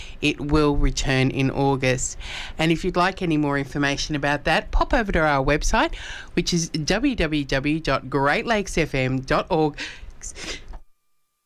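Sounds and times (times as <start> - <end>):
speech: 0.2 - 10.6
single sharp sneeze: 10.2 - 10.8.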